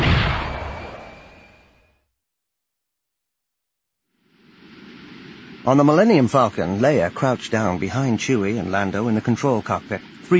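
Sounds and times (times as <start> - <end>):
sci-fi laser cannon blast with a thin whining tone in space combat: 0.0 - 1.1
speech: 5.6 - 10.3.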